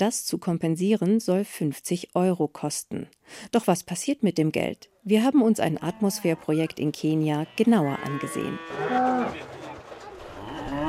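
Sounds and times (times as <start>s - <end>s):
speech: 0.0s - 9.6s
cows mooing in a yard behind a house in a suburb of Nairobi, Kenya: 5.6s - 9.5s, 10.3s - 10.8s.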